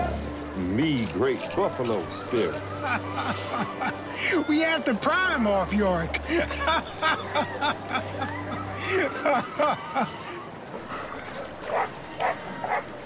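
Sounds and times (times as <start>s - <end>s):
speech: 0.6s - 10.2s
laughter: 2.6s - 4.6s, 6.1s - 10.7s
dog barking: 10.9s - 12.9s.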